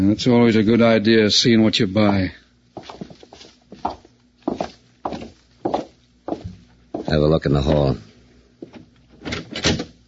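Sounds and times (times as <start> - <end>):
speech: 0.0 - 2.4, 7.1 - 8.1
footsteps walking across a hall: 2.1 - 7.2.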